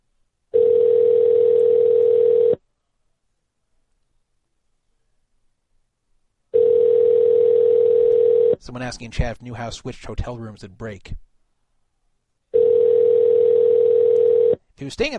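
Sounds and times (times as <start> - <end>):
outgoing telephone call ringback tone: 0.6 - 2.6, 6.6 - 8.6, 12.6 - 14.6
speech: 8.7 - 11.3, 14.8 - 15.1.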